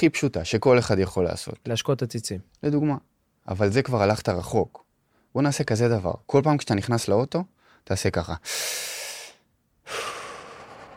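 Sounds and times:
speech: 0.0 - 9.0
slow breathing during a breathing exercise: 8.4 - 10.9.

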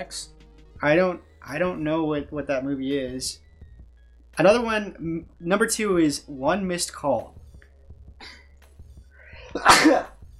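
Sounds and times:
speech: 0.0 - 3.4, 4.4 - 7.4, 9.5 - 10.1
loud sneeze: 9.5 - 10.1.

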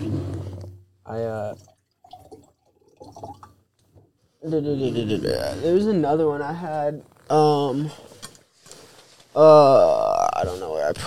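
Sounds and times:
speech: 1.1 - 1.7, 4.4 - 8.1, 9.4 - 11.0
water pouring into a glass: 1.4 - 3.6.

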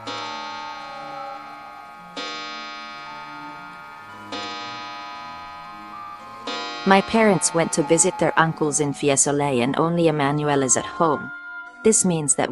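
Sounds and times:
English clock striking at a home's entrance: 0.0 - 9.8
speech: 6.9 - 12.5.

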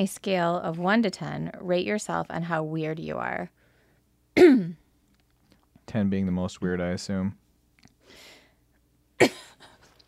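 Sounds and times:
speech: 0.0 - 3.6, 4.4 - 4.8, 5.9 - 7.4, 9.2 - 9.5
coughing: 4.4 - 4.9, 9.2 - 10.0.

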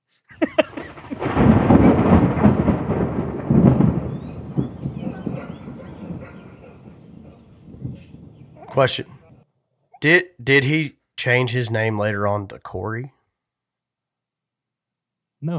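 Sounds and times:
laughter: 0.3 - 2.2
rolling thunder with heavy cracks: 0.4 - 9.4
speech: 8.8 - 9.2, 10.0 - 13.2, 15.4 - 15.5.

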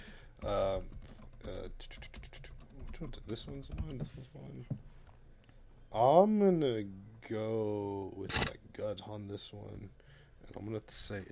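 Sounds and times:
typing hard on a computer keyboard: 0.0 - 4.1
speech: 0.4 - 2.0, 3.0 - 4.9, 5.9 - 11.3.

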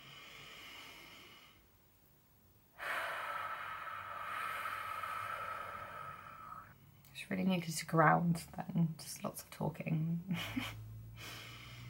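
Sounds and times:
deep human breath: 0.0 - 1.7, 2.8 - 6.8, 11.1 - 11.8
speech: 7.2 - 11.4.

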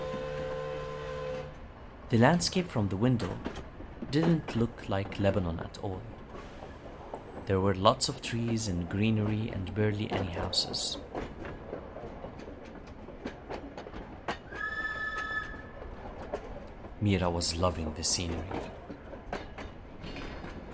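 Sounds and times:
train whistle: 0.0 - 1.6, 14.5 - 15.8
train rumbling along railway tracks: 0.0 - 20.7
speech: 2.1 - 6.2, 7.5 - 11.2, 17.0 - 18.8
train wheels squealing and grinding on tracks under abrupt braking: 14.5 - 15.9.

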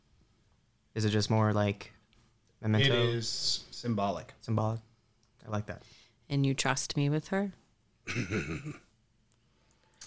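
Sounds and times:
speech: 1.0 - 2.0, 2.6 - 8.8
person coughing: 8.1 - 8.8.

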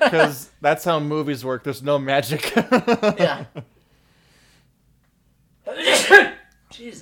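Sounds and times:
speech: 0.0 - 3.8, 5.7 - 7.0
person sneezing: 5.6 - 6.5.

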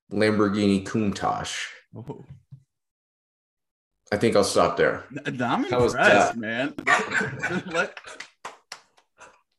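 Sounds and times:
speech: 0.1 - 2.5, 4.1 - 8.3
laughter: 6.8 - 8.4
sharp hand claps: 8.0 - 9.5.

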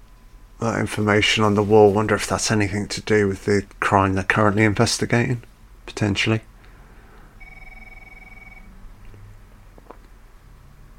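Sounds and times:
low hum: 0.0 - 10.9
speech: 0.6 - 6.5
telephone ringing with a steady electronic tone: 7.4 - 8.8.

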